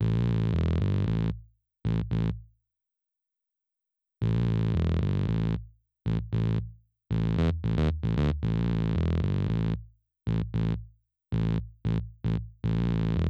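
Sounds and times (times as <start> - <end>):
processed bass: 0.0 - 1.3, 4.2 - 10.8, 11.4 - 13.2.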